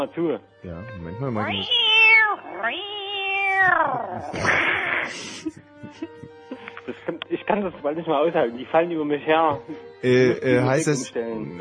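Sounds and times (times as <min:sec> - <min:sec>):
speech: 0:00.0 - 0:01.9, 0:02.6 - 0:03.0, 0:03.6 - 0:11.5
cat meowing agitatedly in long wails: 0:01.4 - 0:05.2
laughter: 0:04.1 - 0:07.2.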